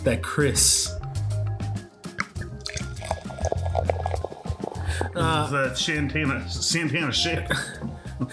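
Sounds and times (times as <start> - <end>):
speech: 0.0 - 1.0, 5.2 - 8.3
champagne pouring into glasses: 2.2 - 6.0.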